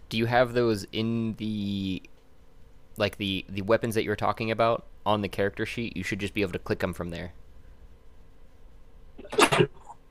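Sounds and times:
speech: 0.1s - 2.1s, 3.0s - 7.4s, 9.2s - 9.8s
sneeze: 9.2s - 9.9s.

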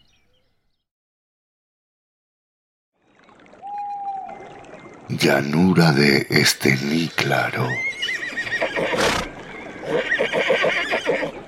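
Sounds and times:
speech: 5.1s - 8.2s
horse whinnying: 6.9s - 11.4s
brief breathy horse snort: 8.7s - 11.3s.

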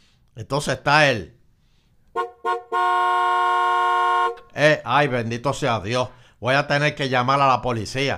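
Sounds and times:
speech: 0.4s - 1.4s, 4.6s - 8.1s
car horn honking at a traffic light: 2.1s - 4.6s.

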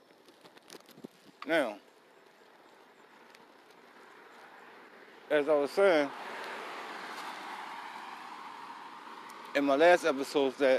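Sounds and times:
road traffic noise outdoors on the streets: 0.0s - 10.7s
speech: 1.5s - 1.9s, 5.3s - 6.2s, 9.6s - 10.7s.

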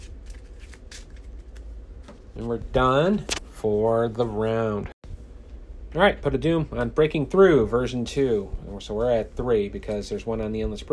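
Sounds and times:
playing cards being shuffled into a deck during a card game: 0.0s - 2.5s
speech: 2.4s - 4.9s, 5.9s - 10.9s.

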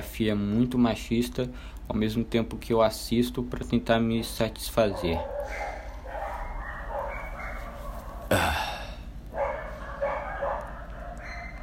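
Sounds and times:
steady low hum: 0.0s - 11.6s
speech: 0.2s - 5.7s
dog barking: 4.1s - 8.3s, 9.3s - 11.6s.

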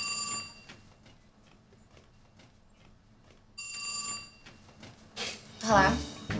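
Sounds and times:
telephone ringing on an outgoing call: 0.0s - 0.8s, 3.6s - 4.6s
speech: 5.7s - 6.1s.

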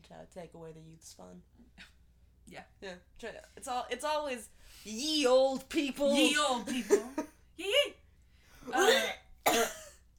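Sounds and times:
speech: 0.1s - 1.9s, 2.5s - 8.0s, 8.6s - 9.2s
person coughing roughly: 8.7s - 10.1s.

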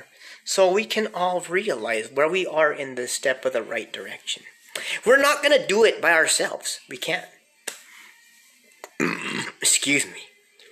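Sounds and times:
speech: 0.4s - 7.4s, 9.0s - 10.3s
loud gulping while drinking coffee: 8.9s - 9.6s
throaty hiccups while drinking coffee: 8.9s - 9.6s.

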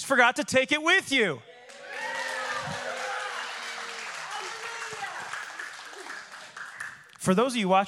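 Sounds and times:
speech: 0.1s - 1.5s, 7.2s - 7.8s
crowd clapping: 1.6s - 7.3s.

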